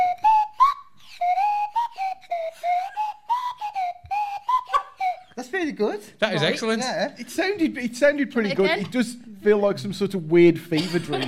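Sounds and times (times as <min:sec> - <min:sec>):
slide whistle playing a short wavering tune: 0:00.0 - 0:05.4
speech: 0:05.5 - 0:11.2
laughter: 0:10.7 - 0:11.2.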